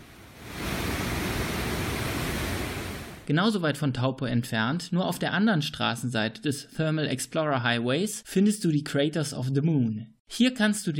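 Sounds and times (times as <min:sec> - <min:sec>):
roaring waterfall: 0:00.0 - 0:03.2
speech: 0:03.3 - 0:10.9.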